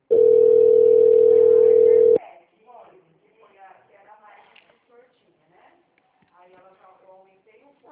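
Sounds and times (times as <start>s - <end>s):
telephone hold tones while a call is transferred: 0.1s - 2.2s.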